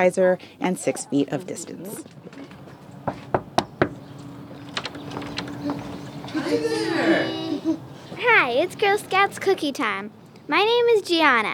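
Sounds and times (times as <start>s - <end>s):
speech: 0.0s - 2.5s, 6.5s - 11.5s
sharp knocks on a front door: 3.0s - 4.0s
laughter: 6.2s - 8.2s.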